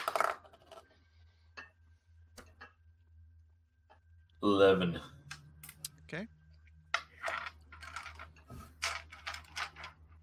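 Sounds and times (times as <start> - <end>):
dice tumbling out of a dice tower: 0.0 - 0.9, 6.9 - 10.2
faint low hum: 0.0 - 10.2
speech: 4.4 - 5.2, 6.1 - 6.4.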